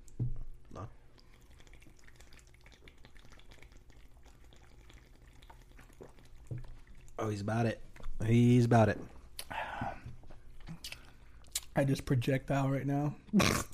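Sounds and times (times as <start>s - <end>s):
person chugging a drink: 0.0s - 7.2s, 9.0s - 11.8s, 13.2s - 13.7s
low hiss: 0.0s - 13.7s
speech: 0.8s - 1.0s, 7.2s - 9.2s, 11.8s - 13.7s.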